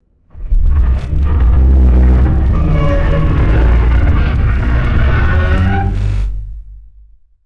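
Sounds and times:
deep rumbling: 0:00.3 - 0:06.9
creature groaning creaks and screeches: 0:01.0 - 0:06.2.

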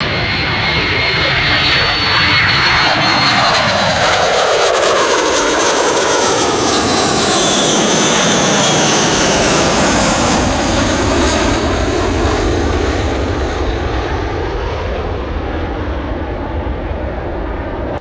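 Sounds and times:
commercial jet aircraft flying overhead: 0:00.0 - 0:17.9.

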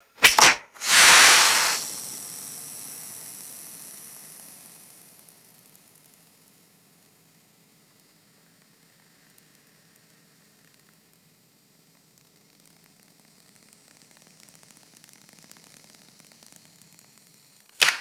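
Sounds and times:
wooden match striking and igniting: 0:00.2 - 0:02.0, 0:17.8 - 0:17.9.

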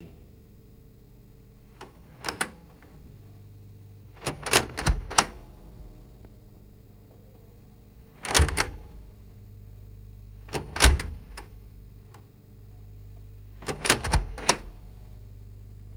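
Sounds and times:
small wooden phonograph doors opening and closing: 0:04.1 - 0:06.1, 0:08.1 - 0:09.3, 0:10.4 - 0:11.8, 0:13.6 - 0:15.0.

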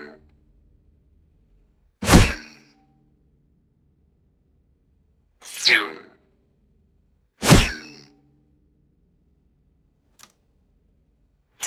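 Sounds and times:
arrow impact: 0:02.0 - 0:02.5, 0:07.4 - 0:08.0
bowstring release twang: 0:02.0 - 0:02.5, 0:07.4 - 0:08.0.

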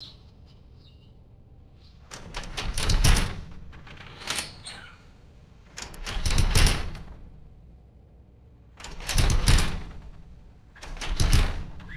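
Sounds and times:
metallic screen door opening and closing: 0:02.0 - 0:07.6, 0:08.7 - 0:11.9.

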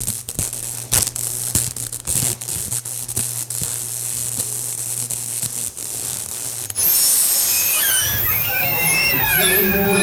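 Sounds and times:
harsh electrical arc buzzing and whining: 0:06.8 - 0:10.0.

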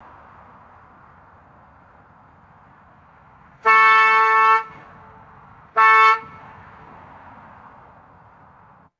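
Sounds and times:
distant car horn honking: 0:03.6 - 0:04.9, 0:05.8 - 0:06.5.

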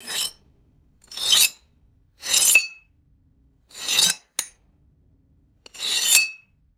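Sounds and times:
short high-pitched glass scrapes: 0:00.0 - 0:00.4, 0:01.1 - 0:01.6, 0:02.2 - 0:02.8, 0:05.7 - 0:06.4.

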